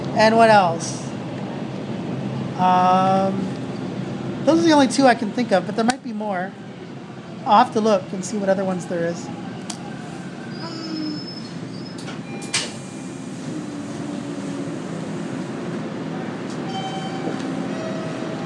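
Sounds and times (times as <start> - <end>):
speech: 0.2 - 1.0, 2.6 - 3.5, 4.4 - 6.6, 7.4 - 9.4
moving train wheels rumbling and squealing: 8.8 - 18.4
train door-closing electronic chime tones: 16.6 - 18.4.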